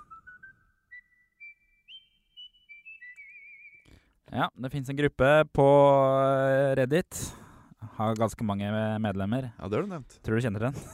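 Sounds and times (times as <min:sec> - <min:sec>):
person whistling a slow steady tune: 0:00.0 - 0:04.0
speech: 0:04.3 - 0:07.4, 0:08.0 - 0:10.9.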